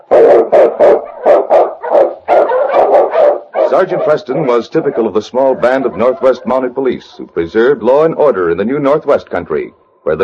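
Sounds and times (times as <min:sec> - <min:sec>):
husky Eskimo lead dog barking: 0:00.0 - 0:07.2
speech: 0:03.7 - 0:10.2.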